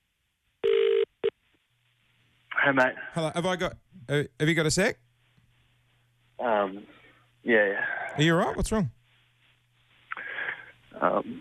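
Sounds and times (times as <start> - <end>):
phone ringback tone heard down the line: 0.6 - 1.1
speech: 2.6 - 5.0, 6.4 - 9.0, 11.0 - 11.3.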